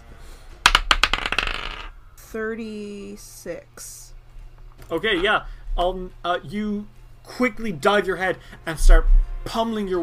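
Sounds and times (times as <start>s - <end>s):
dice rolling on a hard surface: 0.6s - 2.0s
speech: 2.3s - 4.1s, 4.8s - 10.0s.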